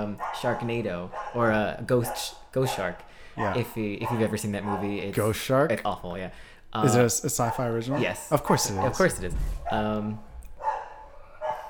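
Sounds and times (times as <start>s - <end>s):
faint dog barks: 0.0s - 5.0s, 7.8s - 9.8s, 10.6s - 11.6s
speech: 0.0s - 10.3s
low room noise: 0.0s - 11.6s.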